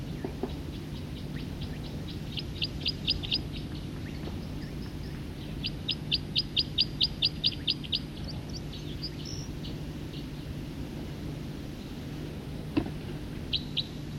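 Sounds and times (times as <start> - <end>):
bird singing in trills: 0.0 - 10.6, 13.4 - 14.1
low hum: 0.0 - 14.1.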